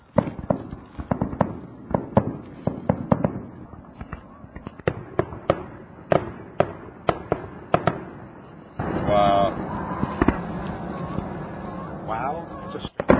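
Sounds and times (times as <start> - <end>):
fireworks display bangs and pops: 0.0 - 13.1
murmur of crowd voices: 8.8 - 13.0.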